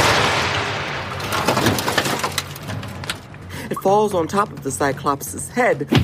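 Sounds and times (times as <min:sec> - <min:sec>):
lightning strike crackling blast: 0:00.0 - 0:03.1
thunder rumbling: 0:00.0 - 0:03.2
speech: 0:03.9 - 0:06.0.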